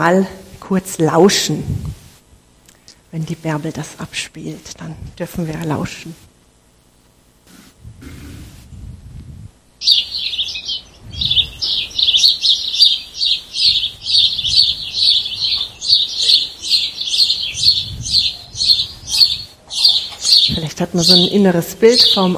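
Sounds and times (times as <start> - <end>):
speech: 0.0 - 2.0, 3.1 - 6.3, 20.8 - 22.3
birds chirping: 9.8 - 22.3.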